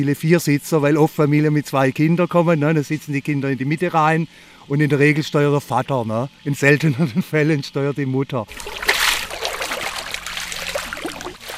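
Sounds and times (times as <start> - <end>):
speech: 0.0 - 8.9
light canoe paddle strokes in water: 8.5 - 11.5.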